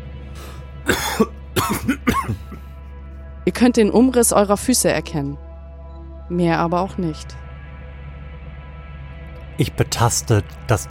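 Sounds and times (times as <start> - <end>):
harsh throaty coughs caused by dusty air: 0.8 - 2.7
speech: 3.4 - 5.4, 6.3 - 7.4, 9.6 - 10.8.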